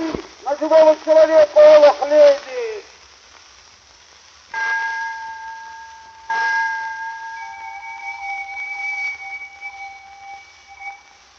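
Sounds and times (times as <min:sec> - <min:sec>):
speech: 0:00.6 - 0:01.8
railway station departure bell ringing: 0:04.6 - 0:09.4.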